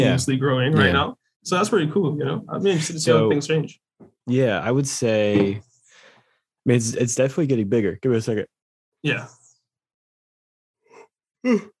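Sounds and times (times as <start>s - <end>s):
speech: 0.0s - 5.7s, 6.6s - 9.4s, 11.4s - 11.7s
person yawning: 10.9s - 11.7s.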